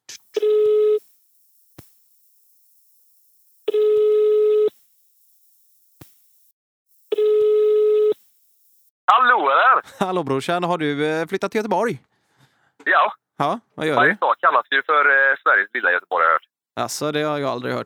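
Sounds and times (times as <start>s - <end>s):
faint clicks: 0.0s - 8.9s
telephone ringing tone on an outgoing call: 0.4s - 6.0s, 7.0s - 8.9s
speech: 9.8s - 12.1s, 12.8s - 17.8s.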